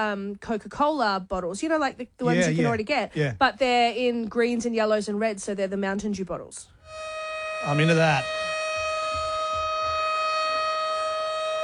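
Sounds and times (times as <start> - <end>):
speech: 0.0 - 7.0, 7.6 - 8.5
civil defense siren wailing for a cyclone alert: 6.8 - 11.6
low rumbling pulses: 8.2 - 10.9.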